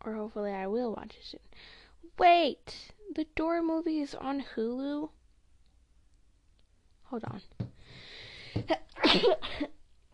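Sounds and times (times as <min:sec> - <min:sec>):
speech: 0:00.0 - 0:05.2, 0:07.1 - 0:07.7, 0:08.6 - 0:09.8
person sneezing: 0:08.5 - 0:09.8
person coughing: 0:08.6 - 0:09.8.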